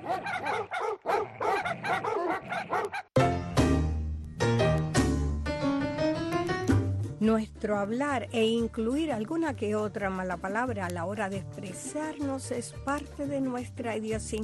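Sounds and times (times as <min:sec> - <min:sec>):
dog barking: 0:00.0 - 0:03.1
music: 0:03.2 - 0:14.4
speech: 0:07.4 - 0:14.4.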